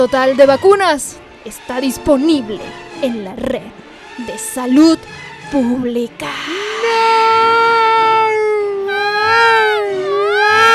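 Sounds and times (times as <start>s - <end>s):
speech: 0.0s - 7.9s
people crying and wailing while being given a vaccine: 6.3s - 10.7s.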